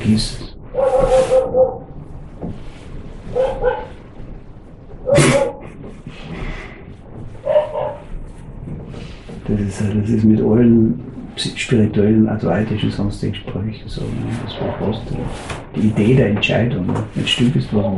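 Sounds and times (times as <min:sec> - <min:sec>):
speech: 0:00.0 - 0:01.2, 0:09.5 - 0:17.9
low rumbling noise: 0:00.0 - 0:17.9
dog barking: 0:00.7 - 0:01.8, 0:03.3 - 0:04.0, 0:05.0 - 0:05.6, 0:07.4 - 0:08.0.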